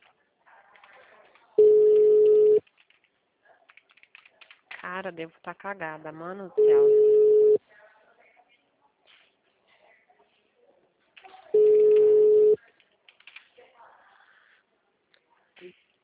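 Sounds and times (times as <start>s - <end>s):
faint sounds: 0.0s - 16.0s
phone line ringback tone: 1.6s - 2.6s, 6.6s - 7.6s, 11.6s - 12.6s
speech: 5.0s - 7.2s.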